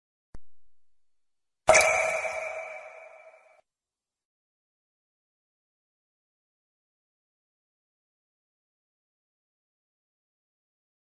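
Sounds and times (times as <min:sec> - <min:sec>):
water droplets SMS message ringtone: 0:01.7 - 0:03.5.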